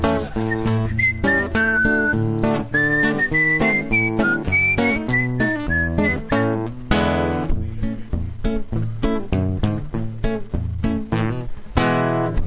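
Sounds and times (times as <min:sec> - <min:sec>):
busy rhythmic backing music with percussive beats: 0:00.0 - 0:12.4
person whistling a bright wavering melody: 0:00.4 - 0:06.7.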